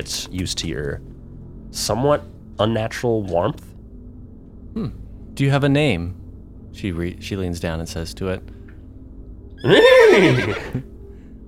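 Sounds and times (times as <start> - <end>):
speech: 0.0 - 1.1, 1.7 - 3.7, 4.7 - 6.2, 6.8 - 8.5, 9.6 - 10.9
horse whinnying: 9.6 - 10.8.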